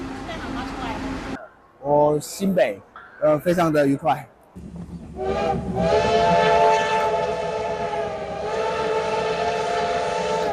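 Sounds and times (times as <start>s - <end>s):
low rumble of a CT273 steam locomotive rolling past rice paddies: 0.0s - 1.4s, 3.0s - 10.5s
speech: 1.8s - 6.8s
CT273 steam locomotive whistle of Taiwan Railway in eastern Taiwan: 5.2s - 10.5s.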